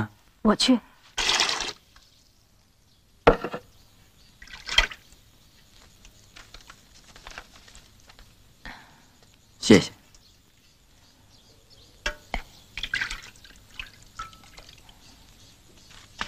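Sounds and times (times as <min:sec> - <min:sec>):
speech: 0:00.4 - 0:00.9, 0:09.7 - 0:10.0
water splashing for washing hands: 0:01.2 - 0:02.0, 0:04.4 - 0:05.0, 0:12.4 - 0:15.0
water pattering and dripping: 0:01.2 - 0:02.8, 0:04.3 - 0:07.2, 0:11.9 - 0:16.2.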